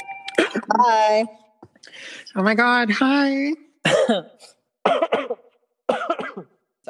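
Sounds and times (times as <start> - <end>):
speech: 0.4 - 5.4, 6.0 - 6.8
harsh rasping coughing: 3.8 - 6.6.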